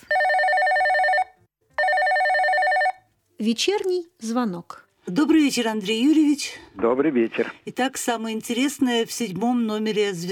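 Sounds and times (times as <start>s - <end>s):
telephone ringback tone of a call to a magazine editorial office: 0.0s - 3.0s
speech: 3.4s - 10.2s.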